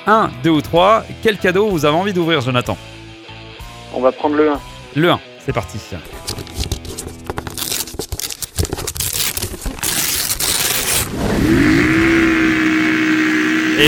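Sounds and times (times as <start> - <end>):
speech: 0.0 - 2.9, 3.9 - 6.4
quad bike engine revving for a trail ride: 11.0 - 13.8.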